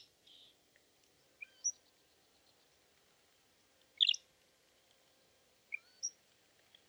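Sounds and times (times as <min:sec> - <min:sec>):
Iberian grey shrike Lanius meridionalis: 0:04.0 - 0:04.2, 0:05.7 - 0:06.2.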